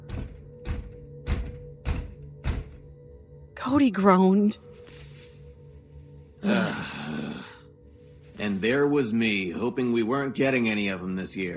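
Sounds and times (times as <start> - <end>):
heavy bangs on a front door: 0.0 - 3.0
speech: 3.6 - 4.7, 6.4 - 6.8, 8.4 - 11.5.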